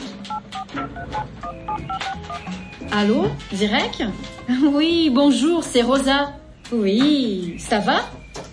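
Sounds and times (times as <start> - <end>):
touch-tone beeps from dialing a telephone number: 0.3 - 2.5
speech: 2.9 - 8.2.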